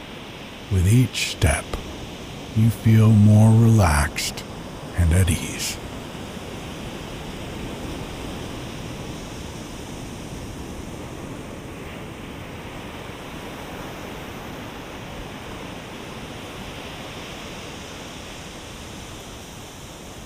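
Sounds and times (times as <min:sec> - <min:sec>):
ocean waves crashing against the shore: 0:00.6 - 0:06.2
speech: 0:00.7 - 0:01.8, 0:02.6 - 0:05.8.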